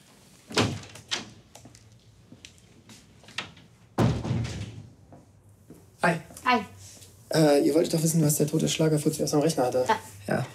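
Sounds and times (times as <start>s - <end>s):
door shutting with a solid resonant thud: 0.5s - 1.3s, 4.0s - 4.9s
speech: 6.0s - 6.7s, 7.4s - 10.5s.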